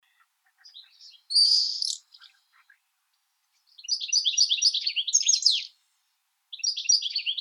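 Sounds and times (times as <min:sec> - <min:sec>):
European goldfinch Carduelis carduelis singing: 0:00.5 - 0:02.6, 0:03.7 - 0:05.7, 0:06.5 - 0:07.3.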